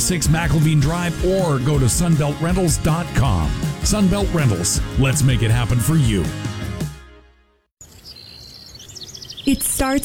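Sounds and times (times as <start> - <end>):
speech: 0.1 - 6.5, 9.5 - 10.0
birds chirping outside the window: 7.8 - 10.0.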